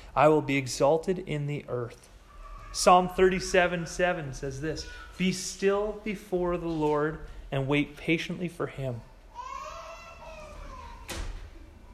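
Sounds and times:
speech: 0:00.2 - 0:02.1, 0:02.7 - 0:09.1
young child wailing: 0:02.3 - 0:02.8, 0:04.7 - 0:05.2, 0:09.3 - 0:11.2.

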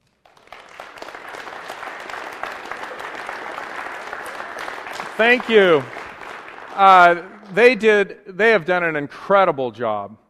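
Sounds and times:
large audience applauding musicians: 0:00.0 - 0:08.0
speech: 0:05.2 - 0:06.0, 0:06.8 - 0:10.2.

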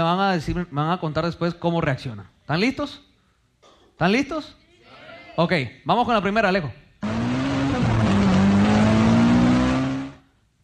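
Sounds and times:
speech: 0:00.0 - 0:03.1, 0:04.0 - 0:04.6, 0:05.4 - 0:06.8
broad rushing noise of a speeding car: 0:07.0 - 0:10.2
car engine roaring as it speeds toward the listener: 0:07.0 - 0:10.3.

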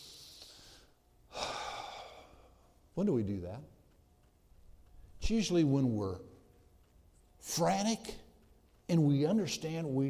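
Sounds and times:
slow deep breath: 0:00.0 - 0:02.8
speech: 0:03.0 - 0:03.8, 0:05.3 - 0:06.4, 0:07.4 - 0:08.2, 0:08.9 - 0:10.0.

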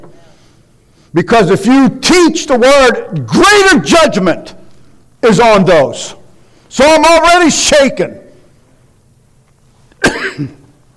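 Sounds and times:
speech: 0:01.1 - 0:04.6, 0:05.2 - 0:08.2, 0:10.4 - 0:10.6
sharp cough with rough throaty tail: 0:10.0 - 0:10.7.

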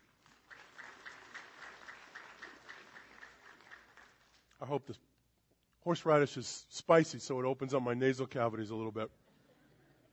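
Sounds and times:
small group clapping: 0:00.0 - 0:04.7
speech: 0:04.6 - 0:05.1, 0:05.8 - 0:09.2.

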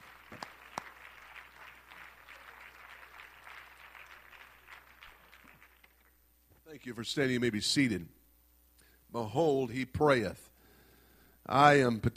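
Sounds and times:
church audience applauding during a service: 0:00.0 - 0:06.2
speech: 0:06.7 - 0:08.2, 0:09.2 - 0:10.5, 0:11.5 - 0:12.1.

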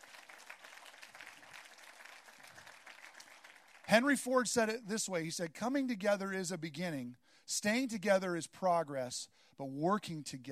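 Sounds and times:
crowd applauding: 0:00.0 - 0:04.1
speech: 0:03.9 - 0:10.4.

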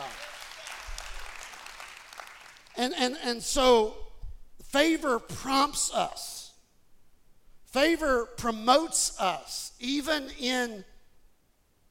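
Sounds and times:
audience applause: 0:00.0 - 0:02.8
speech: 0:02.8 - 0:04.0, 0:04.7 - 0:06.4, 0:07.7 - 0:10.9.

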